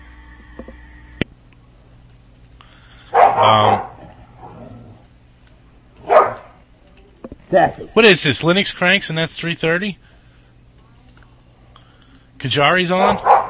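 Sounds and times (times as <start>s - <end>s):
quiet hum: 0.0s - 13.4s
dog barking while attacking a cat: 3.1s - 4.6s, 6.0s - 6.6s, 13.0s - 13.4s
speech: 3.4s - 3.8s, 7.5s - 10.1s, 12.4s - 13.3s.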